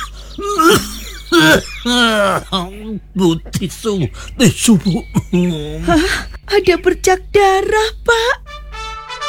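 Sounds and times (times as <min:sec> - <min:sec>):
man coughing harshly: 0:00.0 - 0:06.4
speech: 0:01.5 - 0:08.5.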